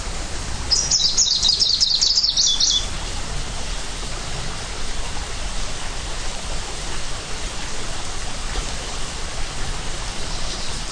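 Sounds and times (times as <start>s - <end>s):
Greenish warbler song in Hilchenbach Germany: 0.0s - 3.2s, 8.4s - 10.9s
continuous rushing background noise: 0.0s - 10.9s.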